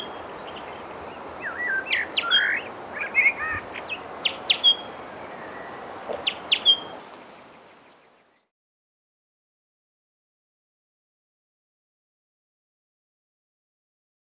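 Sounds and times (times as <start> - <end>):
Rufous-naped tit chipping calls: 1.4 - 7.0.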